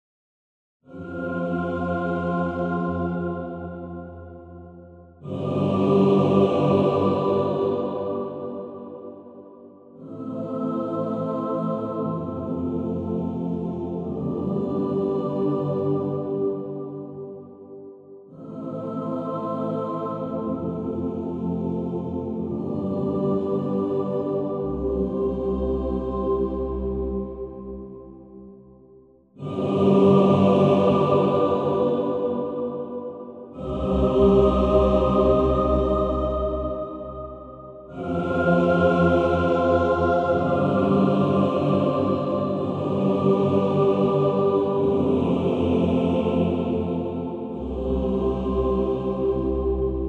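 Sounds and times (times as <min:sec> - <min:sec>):
choir singing: 0:00.8 - 0:28.6, 0:29.3 - 0:50.0.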